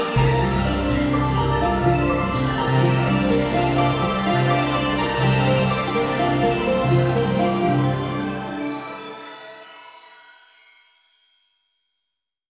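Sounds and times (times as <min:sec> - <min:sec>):
V-Synth playing stacked fifths: 0:00.1 - 0:09.1.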